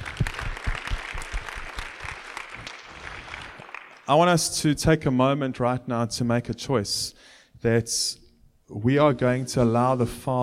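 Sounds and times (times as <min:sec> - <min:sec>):
crowd applauding: 0:00.0 - 0:04.1
speech: 0:04.1 - 0:10.4.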